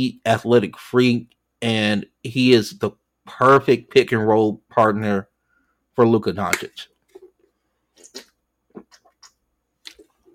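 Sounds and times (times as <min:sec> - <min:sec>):
speech: 0:00.0 - 0:05.3, 0:06.0 - 0:06.9
person sipping water: 0:07.0 - 0:10.3.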